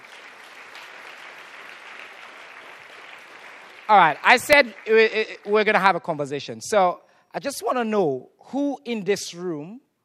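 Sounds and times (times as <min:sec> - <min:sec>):
audience applause: 0:00.0 - 0:05.8
speech: 0:03.9 - 0:09.8.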